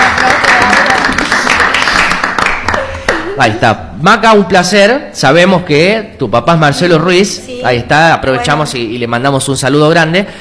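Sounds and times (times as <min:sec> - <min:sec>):
applause from a group welcoming guests: 0:00.0 - 0:03.3
speech: 0:03.4 - 0:10.4.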